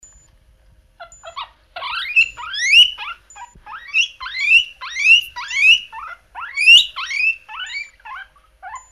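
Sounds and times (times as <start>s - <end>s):
guinea pig wheeking: 1.0s - 8.8s.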